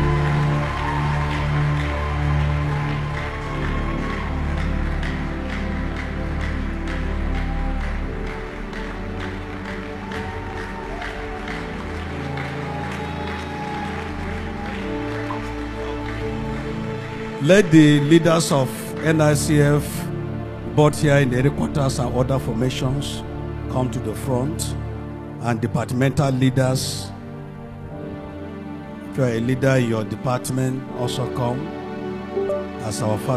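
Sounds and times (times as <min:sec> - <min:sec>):
crowd applauding: 0:00.0 - 0:19.4, 0:32.4 - 0:33.3
speech: 0:17.5 - 0:20.1, 0:20.8 - 0:24.8, 0:25.4 - 0:27.1, 0:29.2 - 0:31.8, 0:32.4 - 0:33.3.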